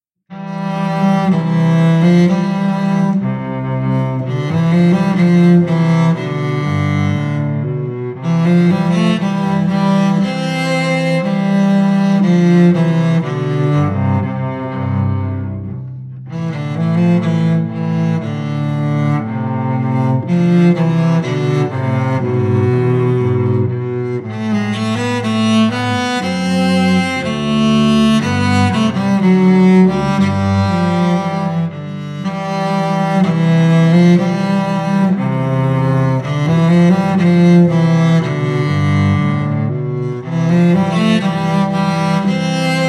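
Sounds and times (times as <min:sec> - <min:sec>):
violins: 0:00.3 - 0:42.8.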